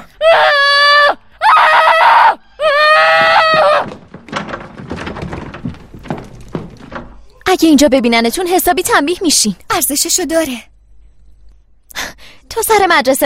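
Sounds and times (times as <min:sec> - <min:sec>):
children screaming and yelling at each other: 0:00.2 - 0:04.0
soft rustling: 0:03.3 - 0:07.5
speech: 0:07.6 - 0:10.7, 0:12.6 - 0:13.2.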